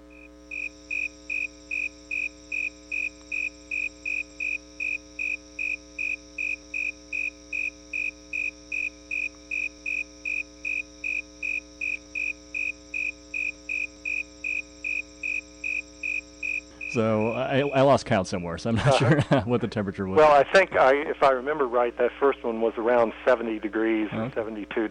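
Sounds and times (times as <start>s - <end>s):
snowy tree cricket Acanthus fultoni chirping: 0.0s - 18.0s
faint constant hum: 0.0s - 24.8s
speech: 17.0s - 24.8s
laughter: 18.6s - 21.0s.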